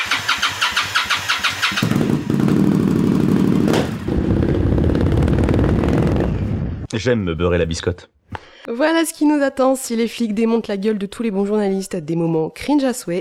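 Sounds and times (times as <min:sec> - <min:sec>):
motorcycle engine running: 0:00.0 - 0:06.9
speech: 0:07.0 - 0:13.1.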